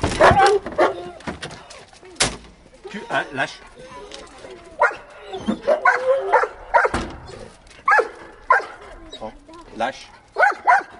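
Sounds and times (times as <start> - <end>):
speech: 3.1 - 3.9, 9.8 - 10.2
rescue dog barking during play: 4.8 - 7.0, 7.9 - 8.8, 10.4 - 10.9
rescue dog whimpering during play: 5.1 - 6.3, 9.0 - 9.4.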